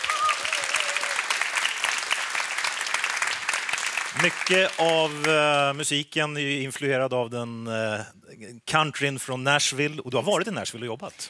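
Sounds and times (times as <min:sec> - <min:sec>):
audience clapping for the band: 0:00.0 - 0:06.0
speech: 0:04.1 - 0:11.2.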